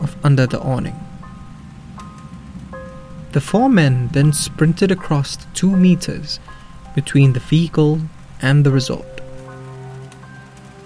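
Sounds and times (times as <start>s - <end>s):
heavy rain beating down: 0.0s - 10.8s
low sustained musical drone: 0.0s - 10.8s
speech: 0.2s - 1.1s, 3.3s - 9.1s.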